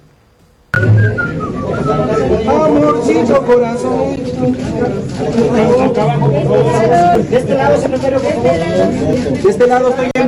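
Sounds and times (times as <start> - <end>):
woman whistling a romantic song tune: 0.8 - 2.3
crowd noise and voices at a live event: 0.8 - 10.2
speech: 2.7 - 10.2.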